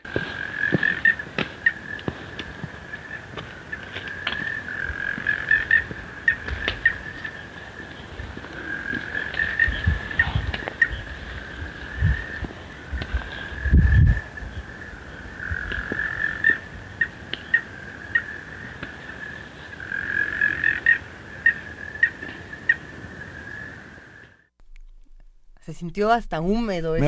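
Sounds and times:
dense chorus of frogs croaking and trilling: 0:00.0 - 0:25.7
rustles: 0:00.0 - 0:26.2
low thumps: 0:24.5 - 0:27.0
speech: 0:25.8 - 0:27.0.

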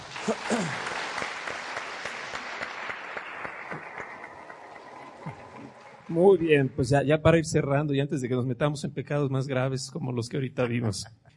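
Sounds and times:
crowd applause: 0:00.0 - 0:06.9
speech: 0:06.1 - 0:11.3.

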